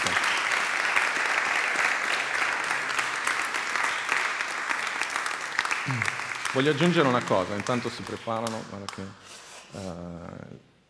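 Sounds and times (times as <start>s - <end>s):
audience applause: 0.0s - 8.6s
speech: 5.9s - 10.7s.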